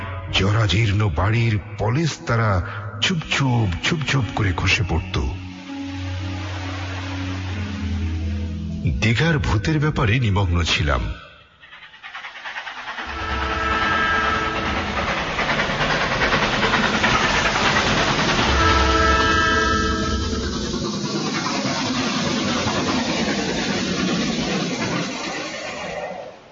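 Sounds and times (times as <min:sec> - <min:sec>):
train starting to move and pulling away: 0:00.0 - 0:26.5
speech: 0:00.3 - 0:05.4, 0:08.8 - 0:11.2
droning train engine tones: 0:04.3 - 0:09.0, 0:11.2 - 0:26.5.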